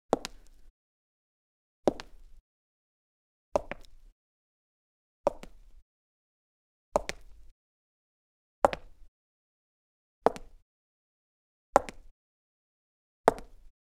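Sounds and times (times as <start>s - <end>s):
footsteps of heeled boots on cement: 0.1s - 0.6s, 1.9s - 2.3s, 3.6s - 4.0s, 5.3s - 5.6s, 7.0s - 7.4s, 8.6s - 9.0s, 10.3s - 10.5s, 11.8s - 12.1s, 13.3s - 13.6s.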